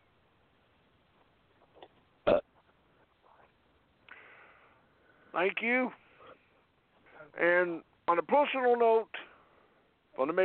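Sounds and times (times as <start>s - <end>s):
loud burps and a rough belch: 2.2s - 2.5s
speech: 5.4s - 6.0s, 7.4s - 9.2s, 10.2s - 10.4s.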